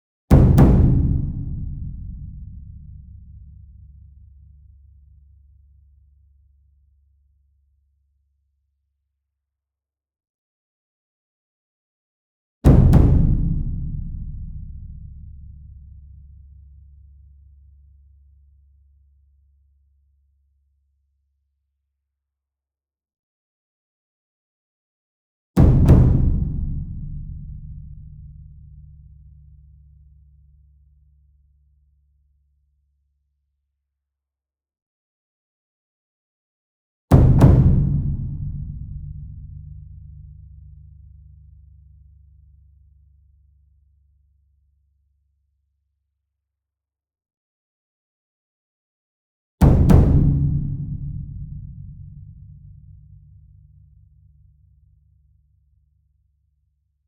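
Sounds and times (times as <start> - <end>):
medium taiko drum double hit: 0.3 - 3.1, 12.7 - 15.2, 25.6 - 28.3, 37.1 - 39.6, 49.6 - 52.5
concert bass drum in drum ensemble: 0.3 - 3.5, 12.7 - 15.5, 25.6 - 28.3, 37.1 - 39.9, 49.6 - 53.1.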